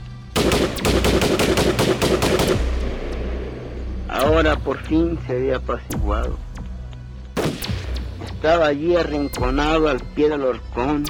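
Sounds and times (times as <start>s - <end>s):
automatic weapon gunfire burst: 0.4s - 3.5s
gunfire echo: 0.4s - 4.3s, 7.4s - 8.2s
speech: 4.4s - 6.5s, 8.4s - 11.0s.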